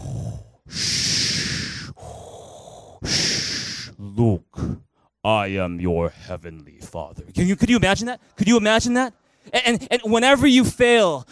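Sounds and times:
voice imitating heavy mechanical respirator breathing: 0:00.0 - 0:05.0
speech: 0:05.2 - 0:11.3.

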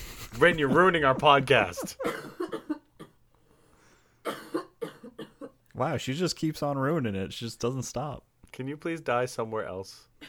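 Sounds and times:
speech: 0:00.4 - 0:02.4, 0:05.8 - 0:10.2
person coughing raspily: 0:01.9 - 0:03.2, 0:04.2 - 0:05.6.

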